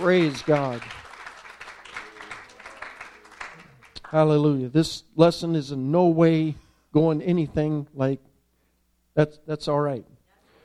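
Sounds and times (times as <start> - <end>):
speech: 0.0 - 1.0, 4.1 - 8.3, 9.2 - 10.1
church congregation clapping hands in praise: 0.0 - 4.3.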